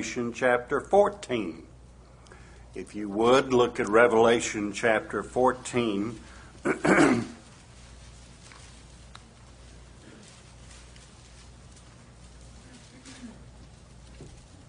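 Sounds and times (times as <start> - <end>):
speech: 0.0 - 1.7, 2.8 - 7.4
throat clearing: 6.6 - 7.4, 12.9 - 13.5.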